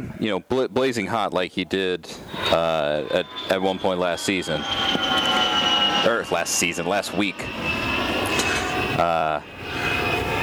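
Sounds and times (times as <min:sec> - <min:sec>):
speech: 0:00.2 - 0:05.3, 0:06.0 - 0:07.9, 0:09.0 - 0:09.9
airplane landing roar of engine and wind noise: 0:02.0 - 0:10.4
whining airplane engine tone: 0:02.1 - 0:10.4.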